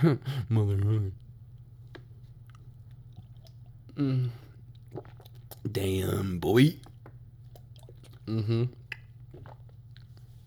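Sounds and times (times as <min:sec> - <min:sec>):
speech: 0:00.0 - 0:01.2, 0:04.0 - 0:06.9, 0:08.3 - 0:08.8
person gulping water: 0:03.1 - 0:05.7, 0:06.8 - 0:10.1
softer swallowing: 0:03.2 - 0:05.7, 0:06.8 - 0:10.1.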